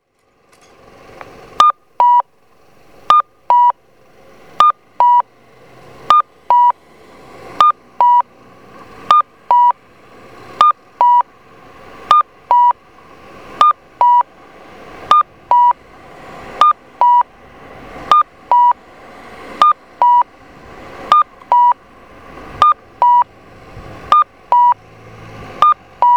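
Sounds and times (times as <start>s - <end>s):
Kyosan LTA-BMS-2 audible crossing signal cuckoo chirps in Saidaijikami, Okayama: 1.6s - 2.3s, 3.1s - 3.8s, 4.6s - 5.3s, 6.1s - 6.8s, 7.6s - 8.3s, 9.1s - 9.8s, 10.6s - 11.3s, 12.1s - 12.9s, 13.6s - 14.3s, 15.1s - 15.8s, 16.6s - 17.3s, 18.1s - 18.8s, 19.6s - 20.3s, 21.1s - 21.8s, 22.6s - 23.3s, 24.1s - 24.8s, 25.6s - 26.1s.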